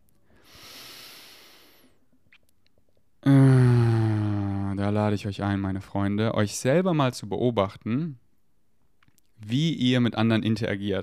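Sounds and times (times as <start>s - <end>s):
long deep breath during a calming breathing exercise: 0.2s - 2.0s, 3.2s - 4.6s
speech: 4.9s - 8.2s, 9.4s - 11.0s.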